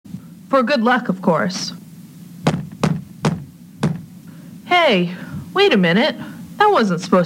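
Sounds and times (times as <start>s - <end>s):
speech: 0.5s - 1.8s, 4.8s - 7.2s
knocking on a wall: 2.5s - 4.2s.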